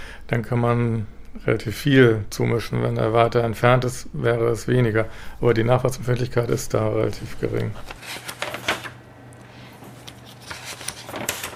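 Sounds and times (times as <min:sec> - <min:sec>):
faint low room hum: 0:00.0 - 0:11.5
speech: 0:00.3 - 0:08.3
paper documents rustling and shuffling: 0:07.5 - 0:11.5.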